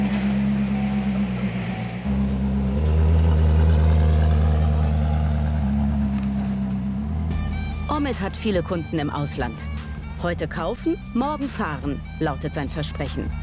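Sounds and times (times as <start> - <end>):
Koenigsegg supercar engine revving and changing gear while driving past: 0.0 - 8.0
speech: 8.1 - 13.4.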